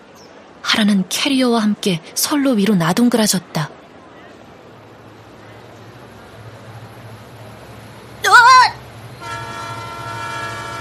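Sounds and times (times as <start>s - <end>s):
train rolling into a station: 0.0s - 10.8s
speech: 0.7s - 3.8s
train horn blast: 9.2s - 10.8s.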